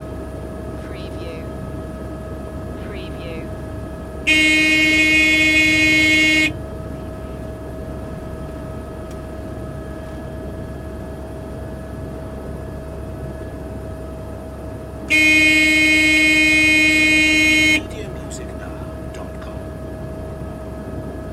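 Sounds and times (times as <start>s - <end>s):
helicopter idling: 0.0s - 21.3s
helicopter alarm warning horn: 4.2s - 6.8s, 15.1s - 19.6s.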